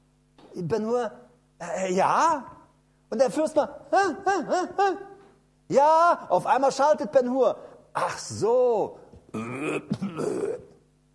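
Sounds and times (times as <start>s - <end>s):
speech: 0.5s - 5.1s, 5.7s - 10.7s
person imitating a croaking drawn-out burp: 9.3s - 10.8s.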